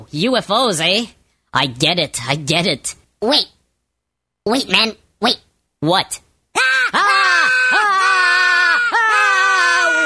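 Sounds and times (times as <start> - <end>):
speech: 0.1 - 3.6, 4.4 - 7.1
man screaming in fright: 6.6 - 10.0.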